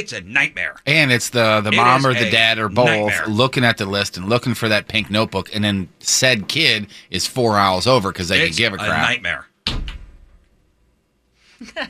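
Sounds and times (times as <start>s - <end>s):
speech: 0.0s - 9.5s, 11.6s - 11.8s
head slamming down on a surface: 9.7s - 10.4s.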